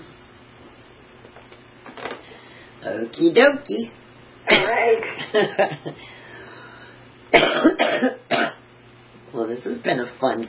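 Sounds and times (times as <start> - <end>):
faint hum: 0.0 - 10.4
speech: 2.8 - 6.2, 7.3 - 8.4, 9.4 - 10.4
harsh raspy coughs: 7.3 - 8.6.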